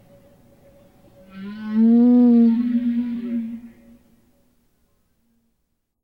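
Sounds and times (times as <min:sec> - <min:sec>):
humpback whale song moan: 0:01.2 - 0:04.2.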